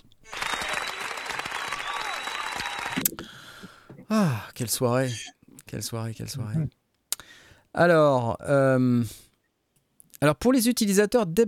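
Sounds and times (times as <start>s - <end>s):
applause: 0.2s - 3.0s
speech: 4.1s - 6.8s, 7.8s - 9.2s, 10.2s - 11.4s.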